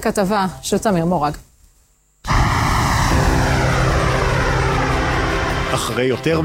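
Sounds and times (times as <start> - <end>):
speech: 0.0 - 1.5, 5.7 - 6.4
KC-46 Pegasus aerial refueling tanker aircraft engines roaring: 2.3 - 6.4.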